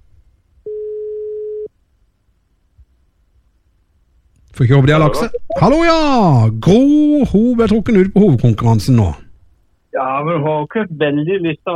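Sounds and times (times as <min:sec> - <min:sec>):
telephone ringback tone on an outgoing call: 0:00.7 - 0:01.7
speech: 0:04.6 - 0:09.2, 0:10.0 - 0:11.7.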